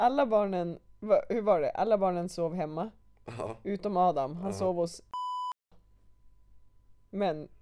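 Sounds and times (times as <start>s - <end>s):
speech: 0.0s - 5.1s, 7.1s - 7.6s
electronic censor bleep covering a name: 5.2s - 5.6s.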